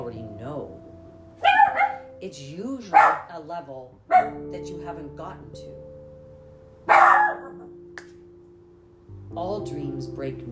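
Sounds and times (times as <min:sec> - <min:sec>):
speech: 0:00.0 - 0:00.9, 0:02.2 - 0:05.9, 0:09.3 - 0:10.5
puppy barking: 0:01.4 - 0:02.1, 0:02.9 - 0:03.3, 0:04.1 - 0:04.4, 0:06.9 - 0:07.7.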